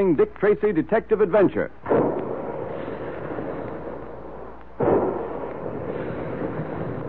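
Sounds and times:
speech: 0.0s - 2.0s
steady hiss: 0.0s - 7.0s
big guns firing: 1.8s - 7.0s.

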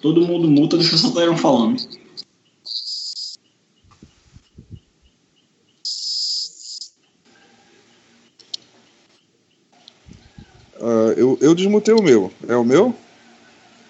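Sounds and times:
speech: 0.0s - 2.0s, 10.8s - 13.0s
thin high-pitched microphone hiss: 0.0s - 13.8s.

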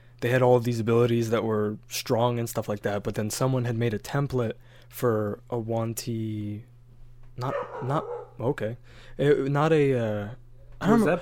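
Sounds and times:
steady low hum: 0.0s - 11.2s
speech: 0.2s - 6.7s, 7.4s - 11.2s
tiny dog barking: 7.4s - 8.4s.

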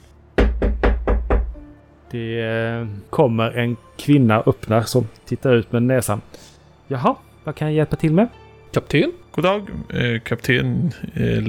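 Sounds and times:
knocking on a wooden door: 0.4s - 1.7s
speech: 2.1s - 11.4s.

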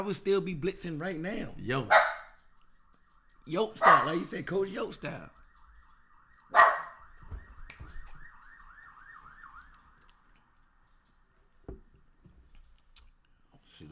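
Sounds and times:
speech: 0.0s - 2.1s, 3.4s - 5.4s
police siren yelping: 0.0s - 11.6s
dull knocks: 11.6s - 12.4s.

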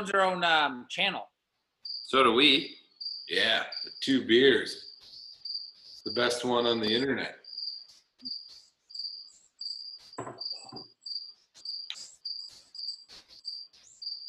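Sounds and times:
speech: 0.0s - 1.3s, 2.1s - 4.9s, 6.0s - 7.4s
crickets chirping: 1.8s - 14.2s.

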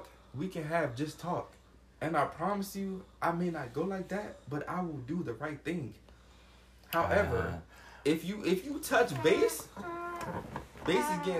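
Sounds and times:
speech: 0.4s - 6.1s, 6.9s - 11.3s
chair creaking with groaning squeak: 9.0s - 11.3s.

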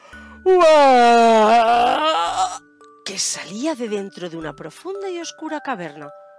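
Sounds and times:
speech: 0.2s - 1.4s, 3.2s - 6.2s
voice performing a drawn-out yawn of a brown bear: 0.5s - 2.6s.

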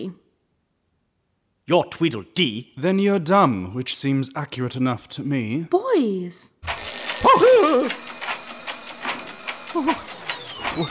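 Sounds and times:
speech: 0.0s - 0.2s, 1.7s - 6.6s, 7.2s - 8.2s, 9.7s - 10.1s
alarm clock ringing with electronic pulses: 6.6s - 10.9s.

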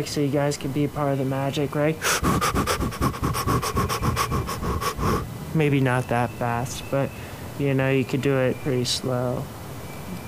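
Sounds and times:
speech: 0.0s - 9.6s
rapid rhythmic Wim Hof method breathing: 2.0s - 5.4s.

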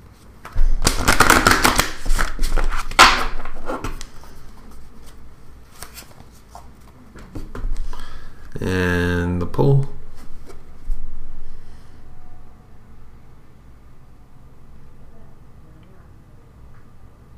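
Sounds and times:
deck of cards riffled and shuffled: 0.4s - 7.9s
speech: 8.6s - 10.0s.

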